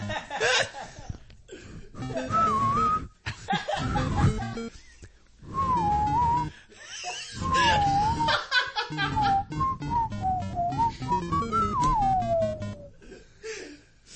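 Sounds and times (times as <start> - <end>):
chuckling and laughter: 0.0 - 1.2, 3.2 - 5.1, 6.7 - 9.5
person whistling a short wavering melody: 2.0 - 3.2, 3.8 - 4.7, 5.5 - 6.6, 7.4 - 8.4, 9.0 - 12.9.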